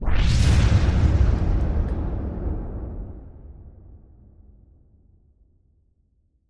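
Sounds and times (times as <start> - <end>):
anime energy explosion: 0.0 - 4.2.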